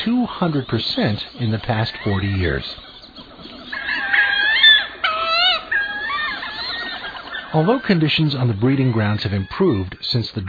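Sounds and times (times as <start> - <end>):
speech: 0.0 - 2.9, 7.5 - 10.4
wood duck squealing whistled calls: 3.6 - 8.0.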